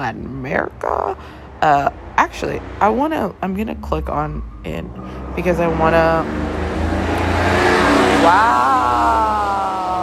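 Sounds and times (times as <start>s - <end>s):
speech: 0.0s - 6.6s, 8.2s - 8.8s
car engine roaring as it races down a neighborhood side street: 0.7s - 10.0s.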